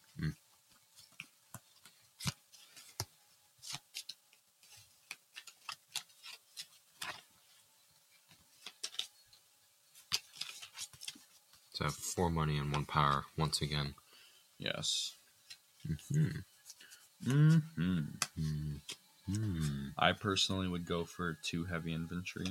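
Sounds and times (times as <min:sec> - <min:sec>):
deck of playing cards being shuffled during a card game: 0:00.7 - 0:07.5, 0:08.2 - 0:09.1, 0:09.9 - 0:13.9, 0:15.4 - 0:20.0
speech: 0:11.8 - 0:14.0, 0:14.6 - 0:15.2, 0:15.8 - 0:16.5, 0:17.2 - 0:22.4.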